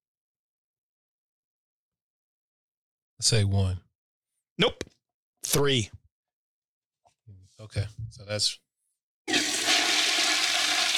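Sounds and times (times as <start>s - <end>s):
speech: 3.2s - 3.8s, 4.6s - 4.9s, 5.5s - 6.0s, 7.6s - 8.6s
toilet flushing: 9.3s - 10.9s.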